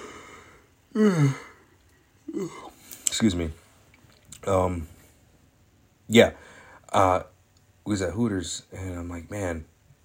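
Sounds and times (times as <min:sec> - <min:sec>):
person yawning: 0:00.9 - 0:01.6, 0:02.3 - 0:02.8
speech: 0:01.0 - 0:01.5, 0:02.4 - 0:03.6, 0:04.4 - 0:04.9, 0:06.1 - 0:07.3, 0:07.9 - 0:09.7.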